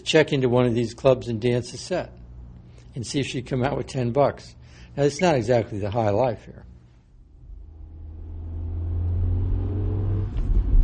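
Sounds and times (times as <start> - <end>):
speech: 0.0 - 2.2, 3.0 - 6.7
car engine droning through a tunnel onto a turnpike at dusk: 7.3 - 10.8.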